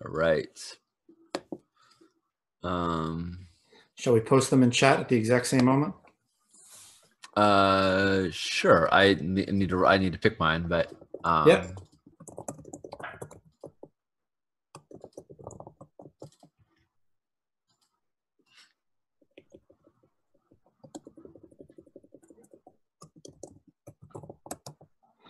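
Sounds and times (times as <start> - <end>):
speech: 0.1 - 0.8, 2.6 - 3.4, 4.0 - 6.0, 7.4 - 12.5
typing on a computer keyboard: 10.8 - 14.0, 14.7 - 16.6, 19.2 - 25.0.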